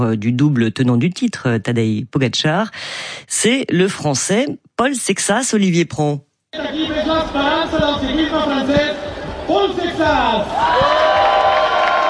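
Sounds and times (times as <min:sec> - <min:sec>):
speech: 0:00.0 - 0:11.3
large crowd cheering and shouting at a team presentation: 0:09.1 - 0:12.0.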